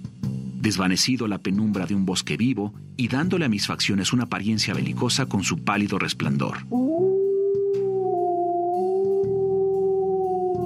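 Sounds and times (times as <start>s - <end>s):
speech: 0.6s - 7.1s
werewolf howling in pain: 6.7s - 10.6s.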